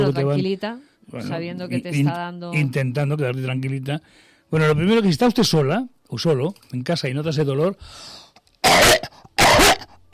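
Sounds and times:
speech: 0.1s - 9.0s
person coughing forcefully: 8.6s - 10.1s.

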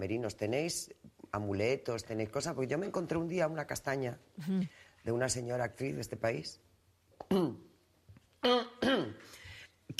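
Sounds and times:
speech: 0.0s - 6.6s, 7.2s - 7.7s, 8.4s - 9.9s
throat sounds: 4.4s - 4.8s, 7.2s - 7.7s
person coughing mid-conversation: 8.4s - 9.3s.

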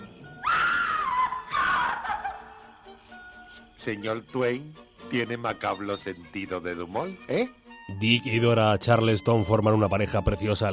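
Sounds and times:
loud drawn-out piercing screams: 0.0s - 2.5s
speech: 3.8s - 10.7s.

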